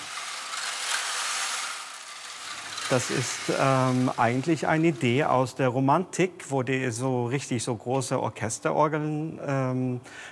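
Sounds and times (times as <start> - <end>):
small pebbles tumbling inside a rotating rain-effect drum: 0.0 - 5.2
speech: 2.9 - 10.3.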